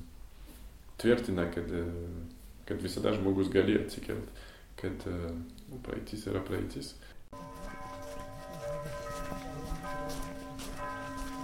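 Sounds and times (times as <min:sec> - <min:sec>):
speech: 0:01.0 - 0:07.5
church bells ringing at a monastery in a village: 0:07.3 - 0:11.4.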